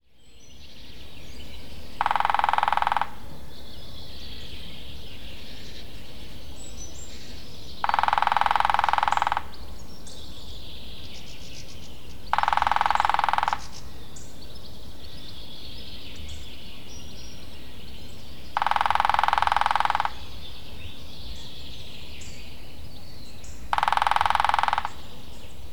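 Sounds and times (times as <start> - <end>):
lesser spotted woodpecker drumming: 1.9 - 3.4, 7.8 - 9.8, 12.1 - 14.0, 18.5 - 20.7, 23.7 - 25.7.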